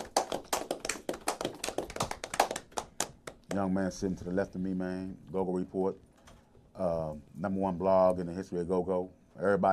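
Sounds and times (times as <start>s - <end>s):
people clapping: 0.0s - 3.7s
speech: 3.6s - 6.1s, 6.8s - 9.7s.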